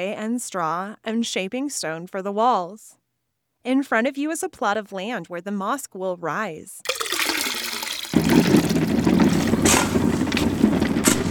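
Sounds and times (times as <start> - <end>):
speech: 0.0 - 3.0, 3.6 - 7.0
water pouring into a trough to mix plaster on a mosque building site: 6.9 - 11.2.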